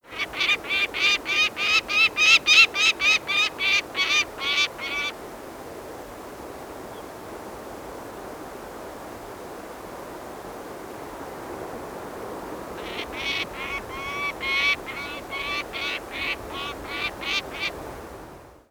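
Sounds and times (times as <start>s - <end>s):
peregrine falcon calling while circling over a nest in a city: 0.1s - 5.2s, 12.8s - 17.8s.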